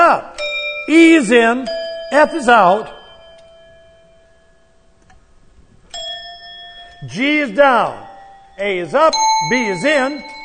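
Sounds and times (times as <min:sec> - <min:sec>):
hand bell tuned to C ringing: 0:00.4 - 0:04.2, 0:05.9 - 0:07.2, 0:08.0 - 0:10.4
speech: 0:00.9 - 0:03.0, 0:07.0 - 0:08.0, 0:08.6 - 0:10.3.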